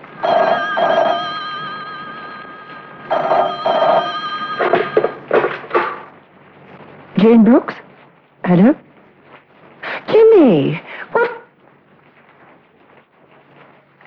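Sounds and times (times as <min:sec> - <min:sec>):
telephone ringing in paired double bursts: 0:00.0 - 0:06.2
speech: 0:07.2 - 0:07.8, 0:08.5 - 0:08.9, 0:10.4 - 0:11.3.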